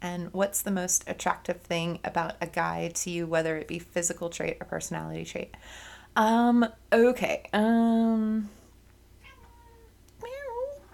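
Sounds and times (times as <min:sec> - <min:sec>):
speech: 0:00.0 - 0:08.6
cat meowing: 0:09.2 - 0:10.9.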